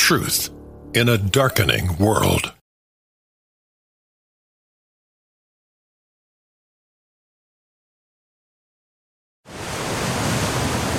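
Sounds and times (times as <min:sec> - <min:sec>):
speech: 0:00.1 - 0:02.6
water pouring over Niagara Falls: 0:09.5 - 0:10.9.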